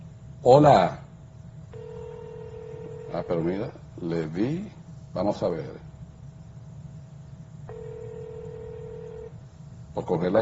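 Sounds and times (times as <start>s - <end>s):
speech: 0.4s - 1.0s, 3.1s - 5.9s, 10.0s - 10.4s
telephone line tone as a call is placed: 1.8s - 3.4s, 7.7s - 9.3s.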